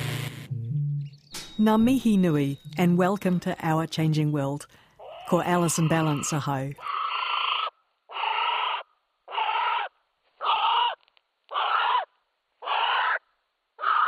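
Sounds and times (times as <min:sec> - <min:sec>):
speech: 0:01.6 - 0:06.9
female North Island brown kiwi hoarse call: 0:05.0 - 0:13.2, 0:13.8 - 0:14.0.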